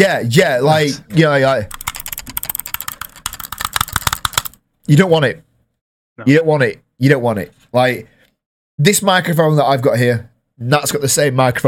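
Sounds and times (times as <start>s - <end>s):
speech: 0.0s - 1.8s, 4.9s - 5.4s, 6.2s - 8.1s, 8.8s - 11.6s
Mac computer mouse-button clicks: 1.8s - 4.6s.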